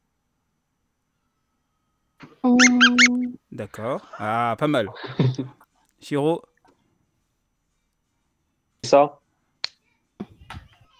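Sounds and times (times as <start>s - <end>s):
speech: 2.4s - 6.5s, 8.8s - 9.2s
squeaky dog toy used as a game buzzer being squeezed: 2.5s - 3.3s
laughter: 3.6s - 5.6s.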